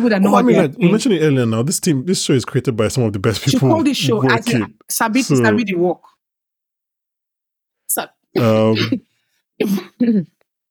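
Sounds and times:
speech: 0.0s - 6.1s, 7.9s - 10.3s
person clearing throat: 8.4s - 9.0s.

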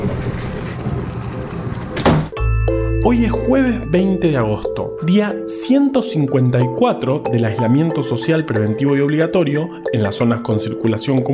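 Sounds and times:
door shutting thud: 0.0s - 2.4s
speech: 3.0s - 11.3s.

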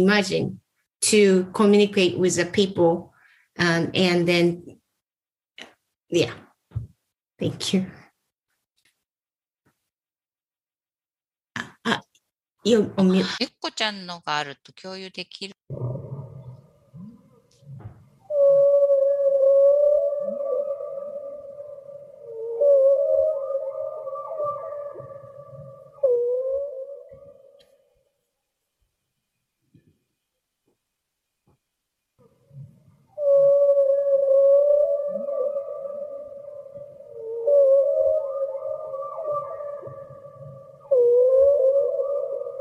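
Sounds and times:
speech: 0.0s - 4.8s, 6.1s - 6.4s, 7.4s - 8.0s, 12.6s - 16.0s
whale singing: 15.7s - 27.9s, 32.4s - 42.5s.

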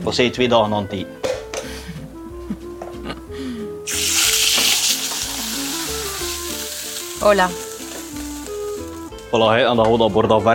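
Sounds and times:
speech: 0.0s - 1.3s, 7.2s - 7.6s, 9.3s - 10.5s
cuttlefish frying in a red-hot pan with peanut oil: 3.9s - 9.1s.

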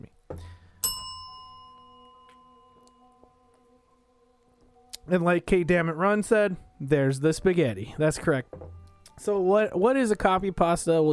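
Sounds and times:
bright bell ding: 0.8s - 3.3s
speech: 5.1s - 11.1s.

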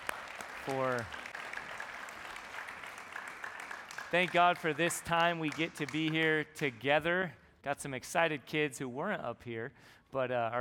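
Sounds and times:
audience applause in a church service: 0.0s - 6.3s
speech: 0.7s - 1.2s, 4.1s - 10.5s.

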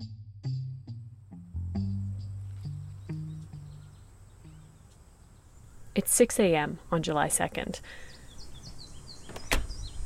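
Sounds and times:
birds chirping outdoors: 2.0s - 10.0s
speech: 6.0s - 8.1s
front door latch click: 9.2s - 9.8s
front door rattle: 9.2s - 9.9s.

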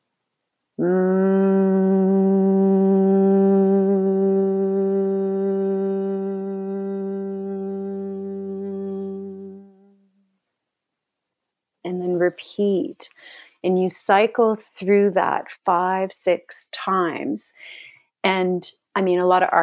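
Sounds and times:
human voice humming like a buzzing bee in Brahmari breathing with closed lips: 0.8s - 10.0s
speech: 12.2s - 19.6s.

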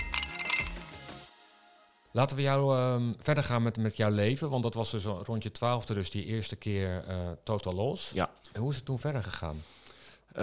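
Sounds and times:
glass clinking with bright ringing tone: 0.0s - 1.0s
speech: 2.1s - 10.4s.

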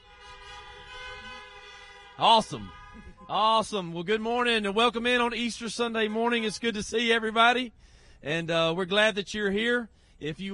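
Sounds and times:
car horns honking: 0.0s - 7.4s
speech: 2.2s - 10.5s.

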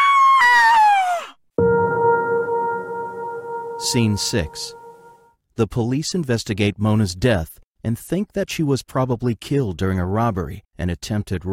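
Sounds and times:
woman screaming on finding a body: 0.0s - 1.3s
steady sustained tone: 1.6s - 5.3s
speech: 3.9s - 4.8s, 5.6s - 11.5s.

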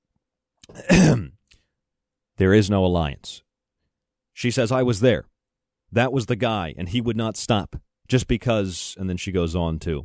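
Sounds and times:
throat clearing after a drink: 0.6s - 1.4s
speech: 2.4s - 3.5s, 4.4s - 5.3s, 5.9s - 10.0s.

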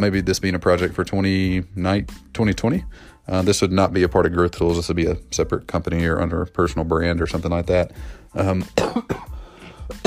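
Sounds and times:
speech: 0.0s - 9.3s
person coughing: 8.7s - 10.0s.

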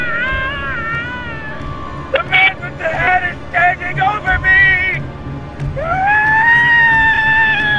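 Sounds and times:
man's guttural almost animalistic scream: 0.0s - 5.0s, 5.8s - 7.7s
low noise: 0.0s - 7.7s.

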